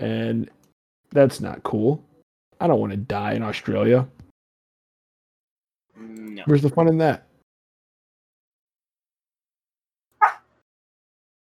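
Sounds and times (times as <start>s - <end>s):
speech: 0.0s - 4.2s, 6.0s - 7.3s
single short dog bark: 10.2s - 10.5s.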